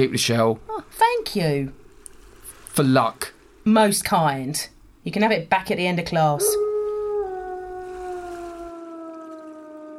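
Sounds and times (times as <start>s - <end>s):
speech: 0.0s - 1.8s, 2.8s - 6.6s
dog howling under a full moon: 6.4s - 9.9s.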